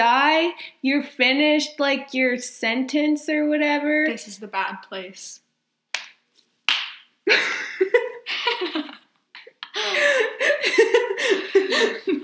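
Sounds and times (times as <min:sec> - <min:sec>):
speech: 0:00.0 - 0:05.4, 0:09.8 - 0:12.2
person's hand slapping their own face: 0:05.9 - 0:07.1
person laughing and giggling: 0:07.3 - 0:12.2.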